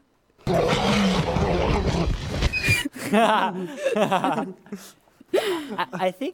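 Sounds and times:
T-Rex roar movie sound effect: 0:00.4 - 0:02.8
laughter: 0:02.9 - 0:05.9
speech: 0:03.1 - 0:06.3.

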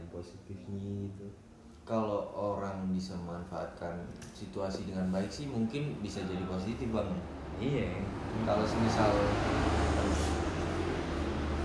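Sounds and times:
speech: 0:00.2 - 0:10.4
heavy vehicle rumbling past on a nearby road: 0:06.1 - 0:11.6.

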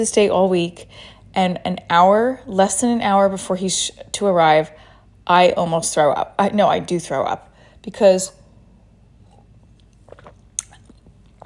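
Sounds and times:
speech: 0:00.0 - 0:08.4
quiet wet mouth sounds and small slurps: 0:09.2 - 0:11.4
sipping wine: 0:09.2 - 0:11.4.

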